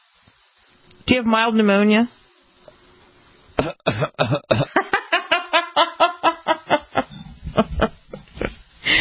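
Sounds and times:
speech: 0:01.1 - 0:02.2, 0:03.6 - 0:04.8
person coughing in a harsh rasping coughing fit: 0:03.6 - 0:04.8
laughter: 0:04.7 - 0:08.6.

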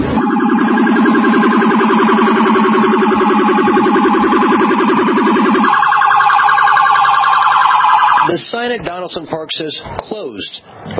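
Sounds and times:
police siren wailing with a rapid warbling pattern: 0:00.1 - 0:08.3
speech: 0:08.7 - 0:10.9.

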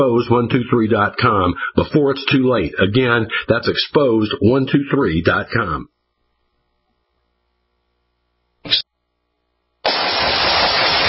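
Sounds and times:
speech: 0:00.0 - 0:05.9, 0:08.6 - 0:08.9
gunshot: 0:09.8 - 0:11.0
loud hissing noise: 0:09.8 - 0:11.0.

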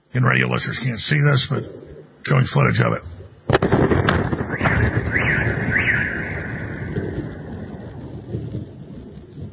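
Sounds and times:
speech: 0:00.1 - 0:03.2
distant explosion: 0:01.5 - 0:09.5
missiles whistling overhead: 0:03.5 - 0:09.5.

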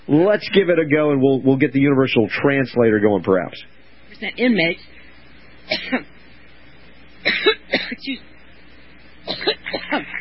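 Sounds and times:
speech: 0:00.1 - 0:05.0, 0:05.7 - 0:06.2, 0:07.2 - 0:08.3, 0:09.2 - 0:10.1
woman coughing harshly while speaking: 0:05.7 - 0:06.0, 0:07.3 - 0:08.0, 0:09.3 - 0:10.1.

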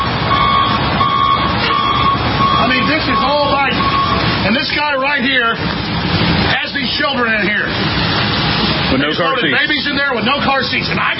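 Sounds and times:
high reversing beeps from a bus or large vehicle: 0:00.0 - 0:04.3
low bus engine rumble: 0:00.0 - 0:11.1
speech: 0:07.0 - 0:11.1.

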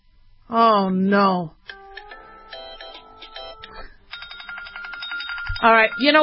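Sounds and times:
speech: 0:00.5 - 0:01.6, 0:05.6 - 0:06.2
phone ringtone electronic melody through a small speaker: 0:01.7 - 0:06.2.

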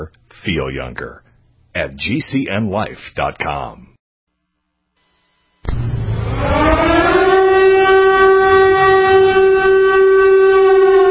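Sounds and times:
speech: 0:00.0 - 0:03.9
air raid siren wailing: 0:05.7 - 0:11.1
dramatic intro music: 0:05.7 - 0:11.1.

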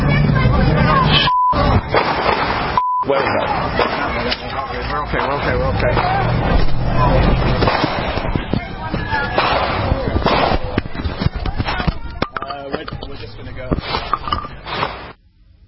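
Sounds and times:
murmur of voices: 0:00.0 - 0:14.8
commotion: 0:00.0 - 0:15.2
gunshots at George Floyd Square: 0:01.9 - 0:02.8, 0:07.4 - 0:08.5, 0:09.3 - 0:10.8.

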